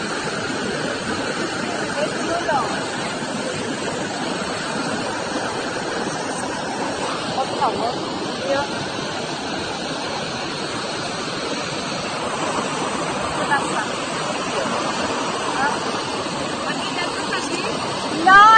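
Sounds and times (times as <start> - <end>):
waterfall roaring, heard from metal grates directly above it: 0.0 - 18.5
people speaking: 1.5 - 4.4, 6.1 - 8.7, 13.4 - 14.8, 15.5 - 16.0, 16.7 - 18.5.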